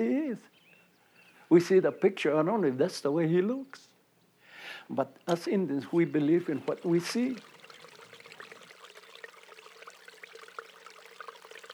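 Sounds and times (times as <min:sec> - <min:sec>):
speech: 0:00.0 - 0:00.6, 0:01.5 - 0:03.9, 0:04.9 - 0:07.5
water trickling over rocks in a canyon stream from the mesa at Encinal: 0:04.9 - 0:11.7.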